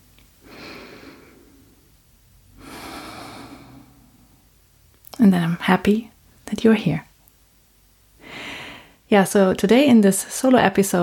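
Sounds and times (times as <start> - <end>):
deep breath taken during a guided relaxation: 0.4 - 4.5, 8.2 - 9.0
speech: 5.2 - 7.1, 9.1 - 11.0.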